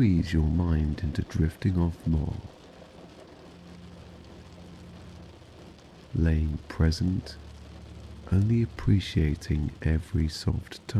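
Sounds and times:
speech: 0:00.0 - 0:02.6, 0:06.2 - 0:07.4, 0:08.3 - 0:10.9
rain pattering against a window: 0:00.0 - 0:10.9.

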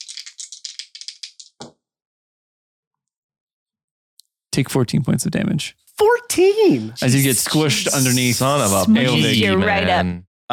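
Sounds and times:
dice being gathered and rattled after a roll: 0:00.0 - 0:01.6
speech: 0:04.6 - 0:10.5.

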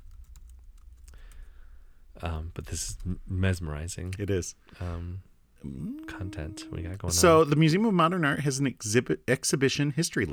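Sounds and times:
rapid typing on a computer keyboard: 0:00.0 - 0:01.5
low steady hum: 0:00.0 - 0:07.9
speech: 0:02.2 - 0:10.3.

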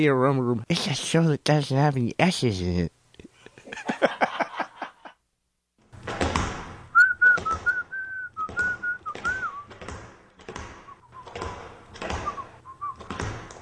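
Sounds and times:
speech: 0:00.0 - 0:03.0
laughter: 0:03.4 - 0:05.2
rhythmic thumps and shuffling steps of skipping: 0:05.9 - 0:13.6
person whistling a tune while skipping: 0:07.0 - 0:09.7, 0:12.2 - 0:13.1.

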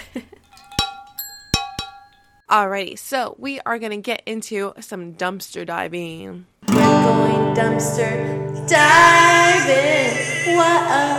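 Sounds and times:
glasses clinking together in a toast: 0:00.0 - 0:02.4
speech: 0:00.2 - 0:00.4, 0:02.5 - 0:11.1.

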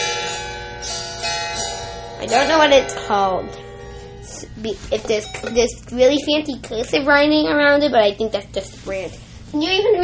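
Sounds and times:
plucked strings on a triangular stringed instrument: 0:00.0 - 0:06.7
speech: 0:02.2 - 0:03.6, 0:04.4 - 0:10.0.

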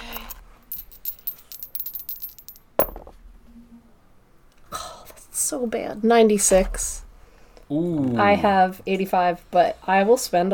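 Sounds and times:
dice clattering during a tabletop role-playing game skill roll: 0:00.1 - 0:03.1
speech: 0:05.5 - 0:07.0, 0:07.7 - 0:10.5.

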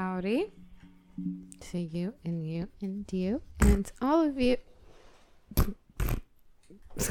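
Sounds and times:
speech: 0:00.2 - 0:04.7, 0:05.5 - 0:05.8, 0:06.7 - 0:07.0
fart noises: 0:05.5 - 0:06.3.

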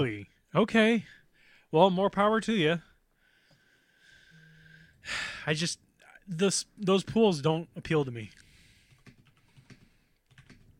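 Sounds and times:
speech: 0:00.0 - 0:02.9, 0:05.0 - 0:08.4
typing on a computer keyboard: 0:08.8 - 0:10.7.

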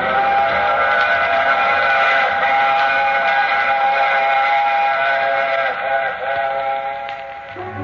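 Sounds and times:
train whistle blowing: 0:00.0 - 0:07.8.

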